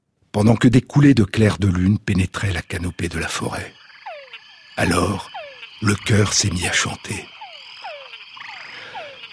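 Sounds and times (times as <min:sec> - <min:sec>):
speech: 0:00.4 - 0:03.8, 0:04.8 - 0:07.3
dense buzzing night chorus of frogs and insects: 0:01.4 - 0:09.3
Túngara frog mating call whines: 0:03.5 - 0:09.3.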